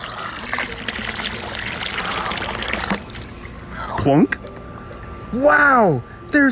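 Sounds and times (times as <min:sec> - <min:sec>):
bucket of water poured into an empty dry pond: 0:00.0 - 0:03.6
speech: 0:04.0 - 0:04.4, 0:05.3 - 0:06.4.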